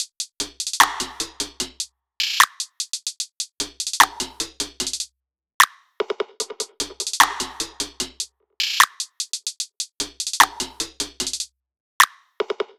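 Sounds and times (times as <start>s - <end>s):
pop drum loop: 0.0s - 5.1s, 6.4s - 11.5s.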